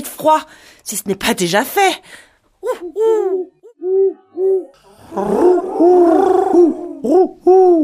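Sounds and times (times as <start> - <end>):
speech: 0.2 - 7.8
owls hooting: 3.3 - 7.8.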